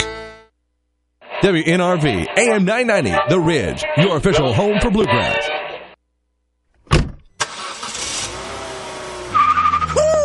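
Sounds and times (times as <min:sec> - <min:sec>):
speech: 0:01.4 - 0:05.6
car door thunking shut: 0:06.9 - 0:07.5
car engine roaring: 0:07.4 - 0:10.2
car tires squealing as the car tears away: 0:07.4 - 0:10.2.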